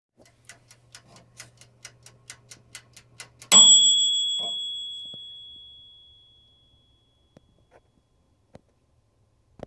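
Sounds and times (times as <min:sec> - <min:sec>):
oven ding: 0:00.2 - 0:07.0.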